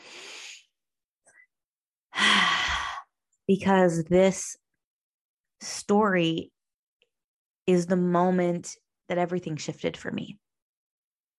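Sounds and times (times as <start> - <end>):
deep breath: 2.2 - 3.1
speech: 3.5 - 4.6, 5.6 - 6.5, 7.7 - 10.4.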